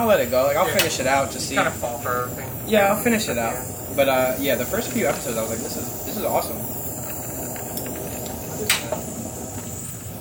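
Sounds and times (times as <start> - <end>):
speech: 0.0 - 6.8
steady hiss: 0.0 - 10.1
ice cube fizzing and crackling in water: 6.1 - 8.7.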